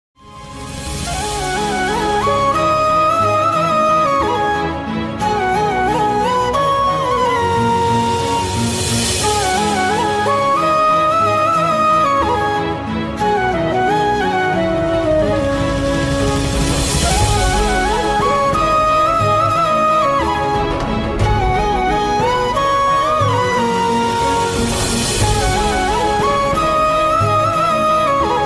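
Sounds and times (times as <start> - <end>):
Hindi song flute ringtone: 0.2 - 28.4.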